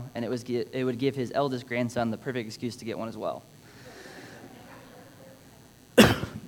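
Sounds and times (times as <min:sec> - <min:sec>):
speech: 0:00.2 - 0:03.6
chesty cough from a chest cold: 0:06.0 - 0:06.4.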